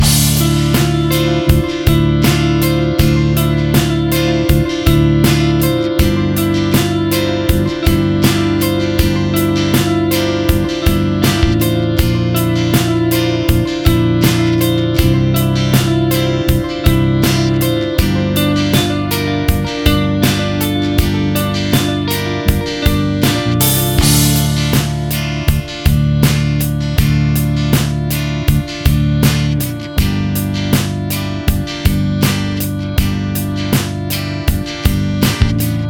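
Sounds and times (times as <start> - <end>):
octaver effect tone: 0.0 - 35.8.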